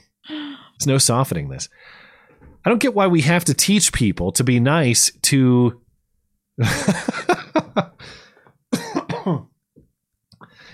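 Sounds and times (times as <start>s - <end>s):
speech: 0.8s - 5.8s, 6.6s - 8.2s, 9.2s - 9.5s
harsh phlegmy coughing and throat clearing: 8.7s - 9.6s.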